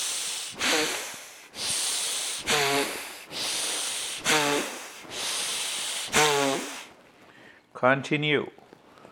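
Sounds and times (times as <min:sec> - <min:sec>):
slow deep hissing breaths from the belly: 0:00.0 - 0:07.6
speech: 0:07.8 - 0:08.6.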